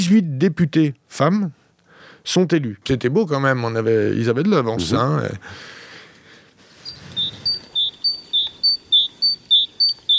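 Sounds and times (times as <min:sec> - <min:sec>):
faint low noise: 0:00.0 - 0:10.1
speech: 0:00.1 - 0:01.6, 0:02.2 - 0:05.8
small tit singing in springtime: 0:06.8 - 0:10.1.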